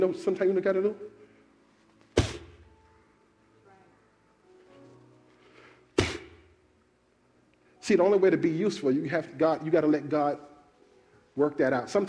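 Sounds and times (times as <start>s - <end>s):
speech: 0.0s - 1.2s, 7.9s - 10.5s, 11.4s - 12.0s
loud sharp slaps demonstrating slapping air out of dough: 2.2s - 2.6s, 6.0s - 6.5s.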